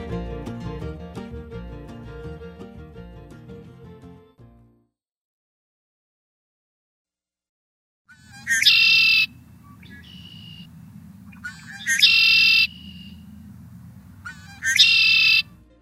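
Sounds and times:
red-winged blackbird buzzy trilling calls: 0:08.1 - 0:15.6
steady low outdoor rumble: 0:08.2 - 0:15.6.

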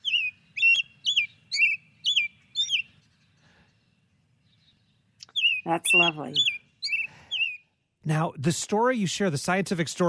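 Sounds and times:
American robin singing warbling caroled phrases: 0:00.0 - 0:08.1
speech: 0:05.6 - 0:06.6, 0:08.0 - 0:10.0.

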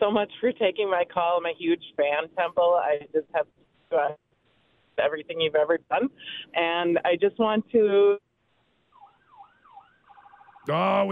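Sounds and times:
speech: 0:00.0 - 0:04.2, 0:05.0 - 0:08.2, 0:10.6 - 0:11.0
emergency vehicle siren heard through a phone line: 0:09.0 - 0:11.0.

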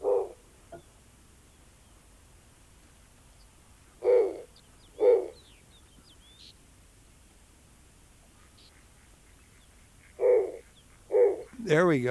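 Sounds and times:
snowy owl deep booming hoots: 0:00.0 - 0:00.8, 0:04.0 - 0:05.5, 0:08.4 - 0:11.8
faint birds chirping: 0:00.0 - 0:12.1
speech: 0:11.7 - 0:12.1.

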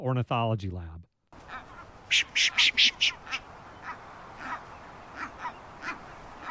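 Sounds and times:
speech: 0:00.1 - 0:01.1, 0:02.1 - 0:03.4
brown booby calls as short harsh hoarse bursts: 0:01.4 - 0:06.4.

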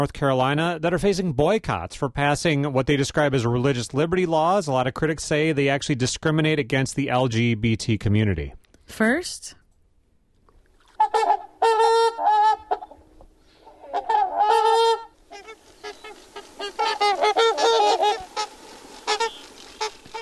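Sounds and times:
speech: 0:00.0 - 0:09.6
trumpeter swans honking: 0:10.9 - 0:20.2.

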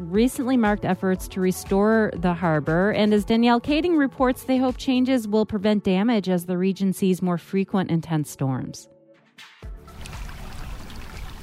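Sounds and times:
speech: 0:00.1 - 0:09.5
creek trickling along a harbor toward a lake: 0:09.9 - 0:11.4.

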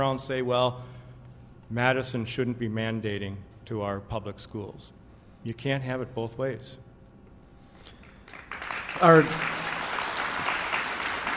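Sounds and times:
speech: 0:00.0 - 0:01.0, 0:01.7 - 0:06.8, 0:09.0 - 0:09.5
audience clapping: 0:07.9 - 0:11.3.

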